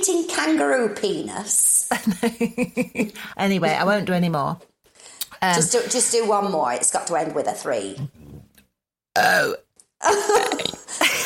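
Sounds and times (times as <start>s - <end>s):
speech: 0.0s - 4.7s, 5.4s - 8.4s, 9.2s - 11.2s
person burping deliberately: 8.0s - 11.0s.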